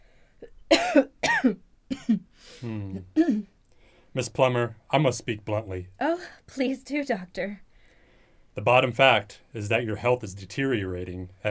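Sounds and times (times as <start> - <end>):
speech: 0.7 - 1.6, 4.2 - 7.6, 8.6 - 11.4
woman coughing: 0.7 - 2.2, 3.2 - 3.5.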